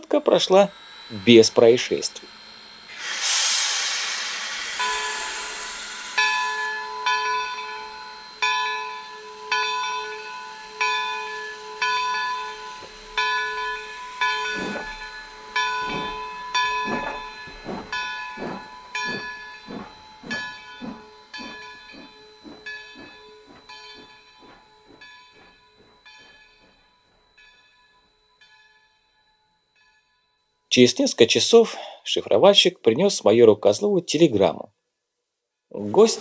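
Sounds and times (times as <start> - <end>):
speech: 0.1 - 2.3, 30.8 - 34.8, 35.8 - 36.1
old steam locomotive releasing exhaust steam: 0.3 - 28.0, 35.8 - 36.1.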